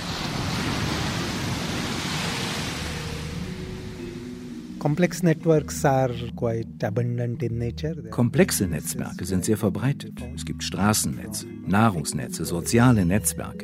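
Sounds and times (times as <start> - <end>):
large monster waves surging in open water: 0.0 - 4.8
speech: 4.8 - 13.6.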